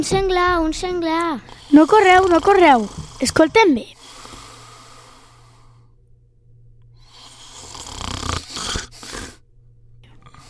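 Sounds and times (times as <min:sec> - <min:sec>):
speech: 0:00.0 - 0:04.0
low steady hum: 0:00.0 - 0:07.6, 0:09.4 - 0:10.4
giant snoring loudly and deeply: 0:01.4 - 0:05.8, 0:07.0 - 0:09.4.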